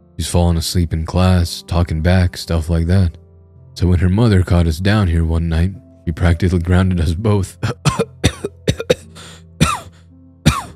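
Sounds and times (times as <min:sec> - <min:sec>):
speech: 0:00.2 - 0:03.2, 0:03.8 - 0:08.0
coughing: 0:07.6 - 0:10.7.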